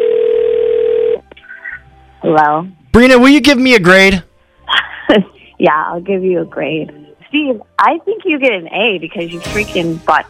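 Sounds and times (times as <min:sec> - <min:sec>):
telephone ringing tone on the line: 0:00.0 - 0:01.2
speech: 0:02.3 - 0:04.3, 0:05.1 - 0:10.2.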